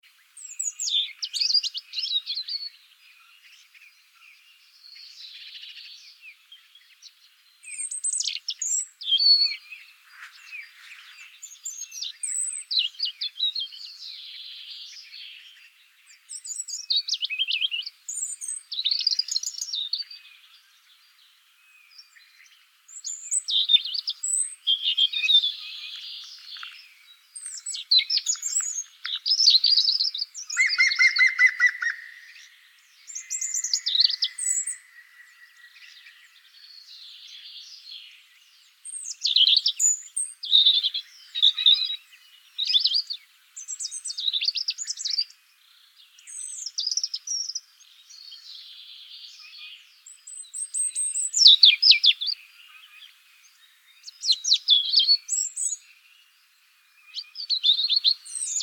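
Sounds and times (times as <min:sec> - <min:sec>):
robin: 0:00.0 - 0:58.6
green woodpecker: 0:00.1 - 0:58.6.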